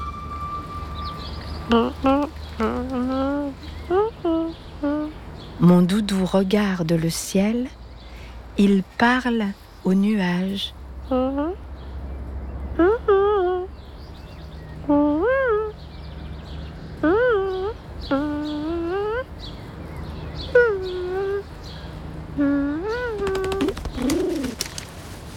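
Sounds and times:
speech: 0:01.7 - 0:02.7, 0:05.8 - 0:07.8, 0:08.6 - 0:11.6
voice imitating pigeon cooing: 0:01.7 - 0:05.2, 0:12.8 - 0:13.8, 0:14.8 - 0:15.8, 0:17.0 - 0:19.3, 0:20.4 - 0:21.6, 0:22.3 - 0:24.8.

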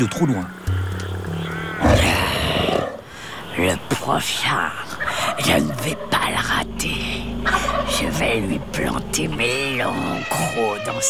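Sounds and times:
speech: 0:00.0 - 0:00.6, 0:03.6 - 0:11.0
prehistoric sabre-toothed tiger roaring: 0:01.3 - 0:03.5, 0:04.6 - 0:10.9.

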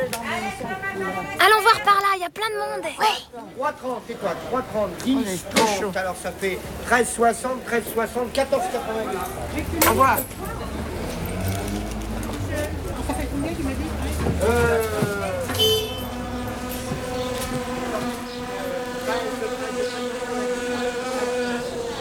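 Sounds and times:
outdoor noise: 0:00.0 - 0:22.0
people's voices: 0:00.0 - 0:22.0
speech: 0:02.2 - 0:10.5, 0:13.4 - 0:15.1
wasps buzzing: 0:09.3 - 0:22.0.

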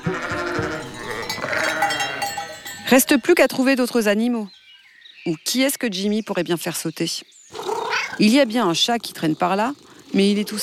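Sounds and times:
crowd of goats bleating: 0:00.0 - 0:02.9
speech: 0:02.9 - 0:04.6, 0:05.2 - 0:07.4, 0:08.2 - 0:10.6.

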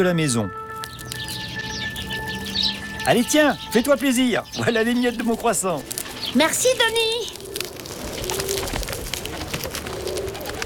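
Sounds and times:
speech: 0:00.0 - 0:00.6, 0:03.1 - 0:07.4
chirpy outdoor noise: 0:00.6 - 0:10.6
pigeons cooing: 0:00.9 - 0:10.6
outdoor rustling: 0:04.8 - 0:10.6.

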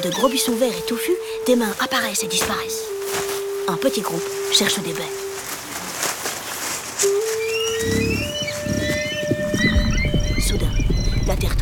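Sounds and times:
speech: 0:00.0 - 0:05.6
horses galloping at full speed: 0:01.6 - 0:11.6
high bird-like calls: 0:07.0 - 0:11.4.

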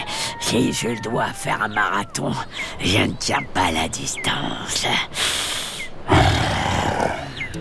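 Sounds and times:
speech: 0:00.5 - 0:05.3
sabre-toothed tiger deep rumbling roar: 0:06.1 - 0:07.4.

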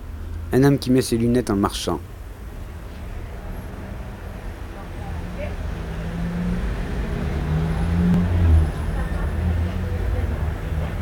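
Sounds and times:
vans passing on Boulevard Saint-Germain: 0:00.0 - 0:11.0
speech: 0:00.5 - 0:02.1
number 63 bus rumbling past on Boulevard Saint-Germain: 0:02.0 - 0:11.0
motorcycles passing on Boulevard Saint-Germain: 0:02.6 - 0:11.0.

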